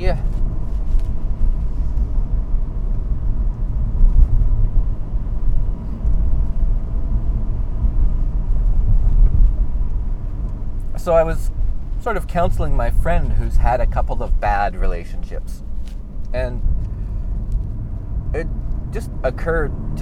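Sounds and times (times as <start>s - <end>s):
speech: 0.0s - 0.4s, 11.1s - 15.7s, 16.3s - 16.8s, 18.3s - 20.0s
car driving in freeway traffic with road and engine noise: 0.0s - 20.0s.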